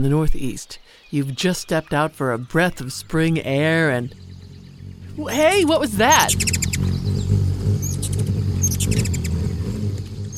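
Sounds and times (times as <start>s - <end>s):
speech: 0.0s - 4.3s, 5.2s - 7.4s, 8.8s - 9.2s
ruby-throated hummingbird's beating wings whizzing past: 3.6s - 9.6s.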